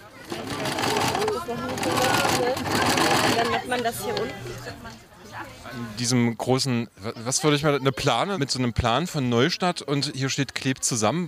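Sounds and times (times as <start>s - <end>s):
sewing machines running: 0.0s - 4.0s
speech: 3.7s - 11.2s.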